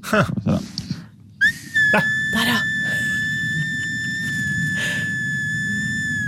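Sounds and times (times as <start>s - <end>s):
speech: 0.0s - 0.6s, 1.9s - 2.7s
hand-carved wooden whistle blown in a long high-pitched note: 1.4s - 6.2s.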